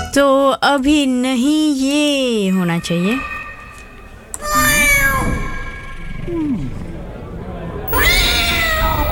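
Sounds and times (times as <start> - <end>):
speech: 0.2 - 3.4
cat meowing: 4.4 - 5.9, 7.9 - 9.0.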